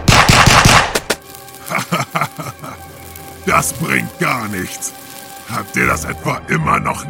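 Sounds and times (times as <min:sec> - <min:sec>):
rapid gunfire fired at a monster with a stony body: 0:00.0 - 0:01.1
laughter: 0:01.6 - 0:02.9
speech: 0:03.6 - 0:07.0.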